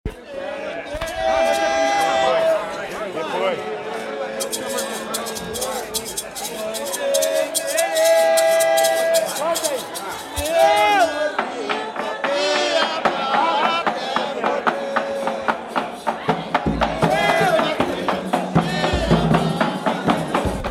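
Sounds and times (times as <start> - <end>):
batuque de umbigada drumming and singing from Tiete: 0.1 - 3.0, 3.7 - 20.6.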